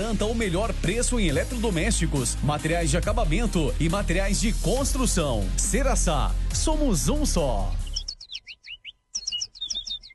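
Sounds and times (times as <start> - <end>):
speech: 0.1 - 7.8
small bird singing: 7.4 - 10.1.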